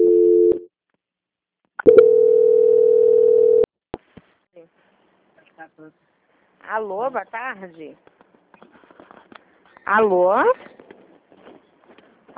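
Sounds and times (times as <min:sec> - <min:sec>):
telephone line tones while a call is being transferred: 0:00.0 - 0:00.6, 0:01.9 - 0:03.7
speech: 0:06.7 - 0:08.1, 0:09.9 - 0:10.7.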